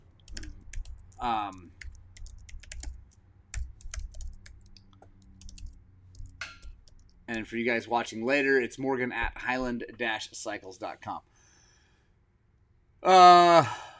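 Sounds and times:
typing on a computer keyboard: 0.2s - 7.2s
speech: 1.2s - 1.8s, 7.3s - 11.3s, 13.0s - 13.8s.

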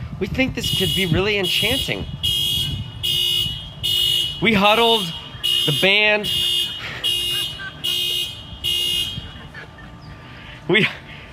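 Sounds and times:
speech: 0.2s - 2.2s, 4.4s - 6.5s, 10.7s - 11.0s
car alarm buzzing blasts and rising whoop: 0.6s - 9.6s
laughter: 6.6s - 11.0s.

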